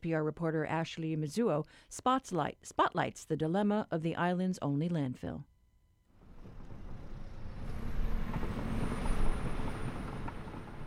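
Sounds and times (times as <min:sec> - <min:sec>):
speech: 0:00.0 - 0:05.5
heavy garbage truck rumbling past on Farrington Highway in Oahu: 0:06.2 - 0:10.8
thin high-pitched garbage truck air-brake squeal: 0:06.5 - 0:10.7.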